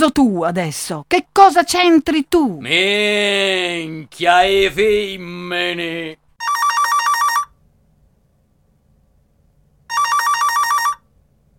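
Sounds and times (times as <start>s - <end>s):
speech: 0.0s - 6.2s
telephone ringing in loud trilling bursts: 6.4s - 7.5s, 9.9s - 11.0s.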